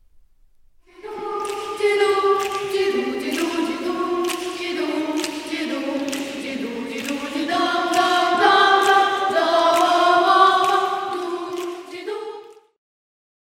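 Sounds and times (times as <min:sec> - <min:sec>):
cathedral choir singing layered harmonies: 0:00.9 - 0:12.8.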